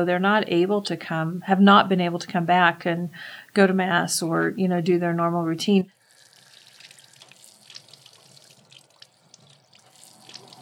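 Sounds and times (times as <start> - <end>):
speech: 0.0 - 6.0
water running from a spring, splashing and trickling: 6.0 - 10.6.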